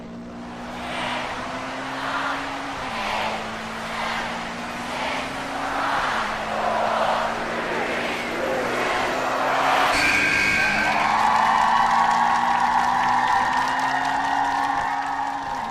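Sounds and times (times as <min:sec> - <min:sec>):
race car engines roaring through gear shifts: 0:00.0 - 0:15.7
loud sustained race car tire squeal: 0:00.5 - 0:15.7.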